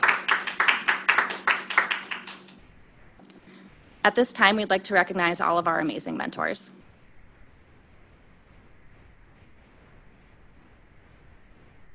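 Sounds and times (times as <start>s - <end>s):
small audience group applauding: 0.0s - 2.6s
speech: 4.0s - 6.8s.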